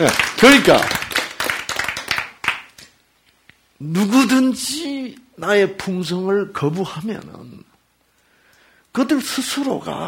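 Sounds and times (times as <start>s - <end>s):
speech: 0.0s - 1.0s, 3.8s - 7.7s, 9.0s - 10.0s
audience clapping: 0.0s - 3.0s.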